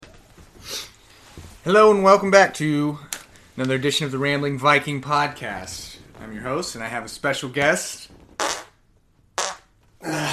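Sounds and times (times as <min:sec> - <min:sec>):
speech: 0:01.4 - 0:08.2
short breathy farts: 0:08.2 - 0:08.8, 0:09.4 - 0:09.7.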